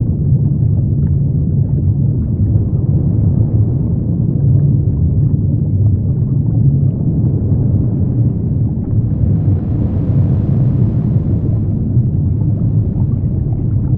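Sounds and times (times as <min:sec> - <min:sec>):
water at a black smoker: 0:00.0 - 0:13.9.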